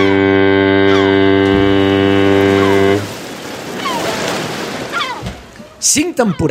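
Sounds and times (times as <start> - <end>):
faint gull cries above the water: 0.0 - 3.1, 3.8 - 4.2, 4.9 - 6.4
deep loud ship's horn blast: 0.0 - 3.4
ocean waves and surf: 0.0 - 6.4.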